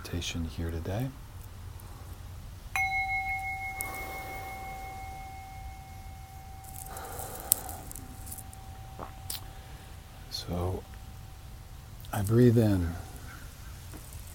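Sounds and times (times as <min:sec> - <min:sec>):
speech: 0:00.1 - 0:01.2, 0:12.3 - 0:13.1
gong being struck: 0:02.8 - 0:11.9.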